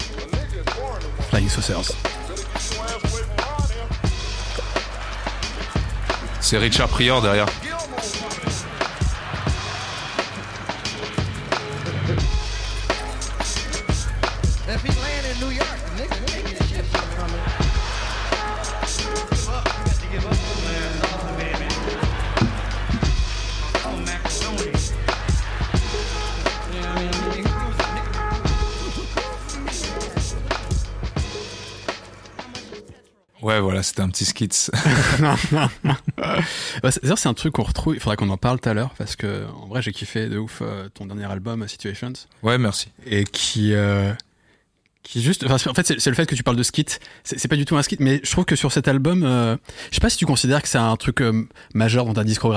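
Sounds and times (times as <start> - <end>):
sampled funk drum break with punchy kicks and snares: 0.0 - 32.8
layered instruments: 0.0 - 32.9
heavy bass: 0.4 - 9.8, 10.9 - 32.0
speech: 1.4 - 2.2, 6.4 - 7.6, 33.5 - 44.3, 45.0 - 52.5
laughter: 4.4 - 11.1, 15.4 - 19.3, 20.2 - 30.8, 34.7 - 36.6.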